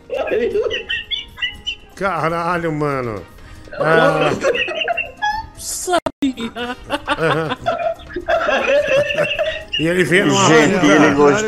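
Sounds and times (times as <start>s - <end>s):
bird squawking: 0.0s - 2.6s, 3.7s - 5.5s, 8.8s - 11.0s
laughter: 0.1s - 1.6s, 3.7s - 5.5s, 6.2s - 11.4s
speech: 0.3s - 1.0s, 2.0s - 4.6s, 5.9s - 7.8s, 9.2s - 11.4s.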